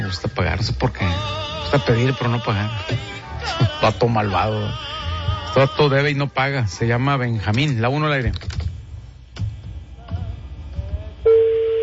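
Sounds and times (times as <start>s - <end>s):
speech: 0.1s - 4.9s, 5.5s - 8.6s
electronic ringback tone of a phone call: 11.3s - 11.8s.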